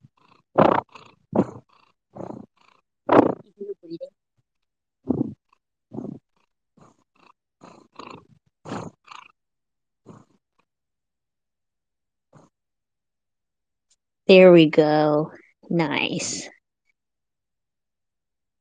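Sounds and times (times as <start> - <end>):
cat purring loudly: 0.0 - 3.6, 5.0 - 9.4, 10.0 - 10.7
speech: 14.3 - 16.5.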